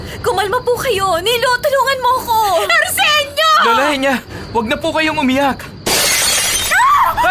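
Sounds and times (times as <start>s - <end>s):
speech: 0.4s - 5.7s
large dresser mirror shattering into pieces: 5.8s - 7.0s
glass fragments ringing and scattering: 5.8s - 7.1s.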